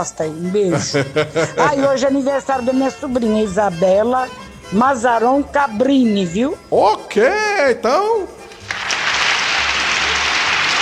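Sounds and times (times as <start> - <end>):
speech: 0.0 - 8.4
laughter: 0.6 - 2.2
applause for a family birthday: 8.5 - 10.8.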